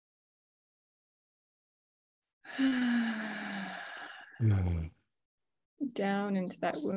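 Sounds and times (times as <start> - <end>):
speech: 2.4 - 5.0, 5.8 - 6.9
deep breathing, inhaling through nose and exhaling through mouth: 2.7 - 5.0.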